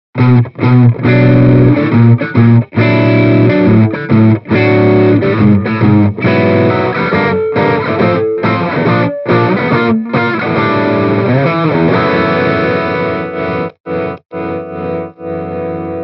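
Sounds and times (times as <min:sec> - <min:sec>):
overdriven Les Paul electric guitar through a Nordik Gjallarhorn Overdrive: 0:00.2 - 0:16.0.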